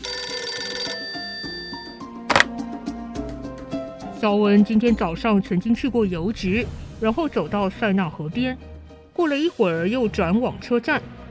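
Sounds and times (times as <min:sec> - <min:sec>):
telephone bell ringing with an incoming call: 0:00.0 - 0:02.5
telephone handset lifted clatter: 0:00.0 - 0:02.5
speech: 0:04.2 - 0:11.1.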